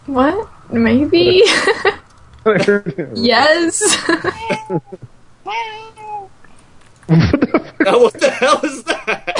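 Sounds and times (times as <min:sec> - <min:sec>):
speech: 0:00.1 - 0:06.0, 0:07.1 - 0:08.8
laughter: 0:01.2 - 0:03.2, 0:03.8 - 0:05.1, 0:07.1 - 0:09.3
person imitating a cat meowing: 0:04.4 - 0:06.3.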